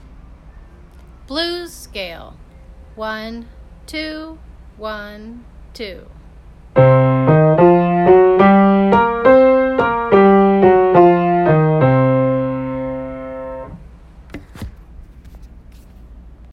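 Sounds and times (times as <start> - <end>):
blues scale played: 6.8 - 13.8.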